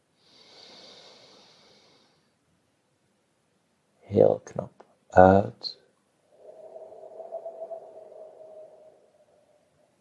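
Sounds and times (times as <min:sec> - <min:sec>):
slow deep breath drawn in through the nose: 0:00.2 - 0:02.4
speech: 0:04.1 - 0:05.8.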